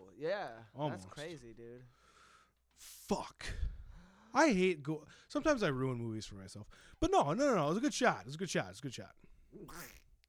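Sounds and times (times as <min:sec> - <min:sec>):
speech: 0:00.2 - 0:02.0, 0:02.8 - 0:10.0
person imitating a cartoon duck quack: 0:09.6 - 0:10.1.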